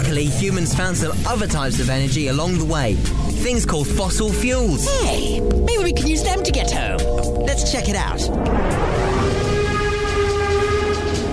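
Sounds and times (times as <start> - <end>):
coal-powered steam train running: 0.0 - 5.0, 5.7 - 11.3
speech: 0.1 - 9.2
steam train whistle: 9.0 - 11.3.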